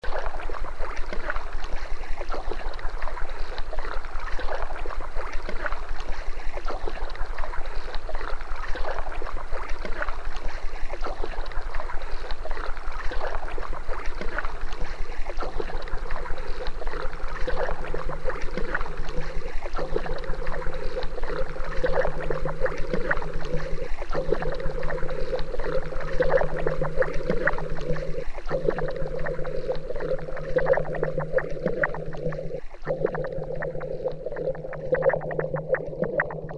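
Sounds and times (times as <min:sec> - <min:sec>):
paddling sounds composition: 0:00.0 - 0:36.5.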